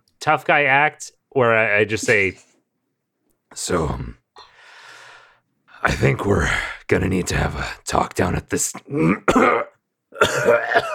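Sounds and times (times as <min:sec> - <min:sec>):
speech: 0:00.2 - 0:02.5, 0:03.5 - 0:04.2, 0:05.8 - 0:10.9
voice acting out a harsh throaty coughing fit: 0:08.7 - 0:10.9.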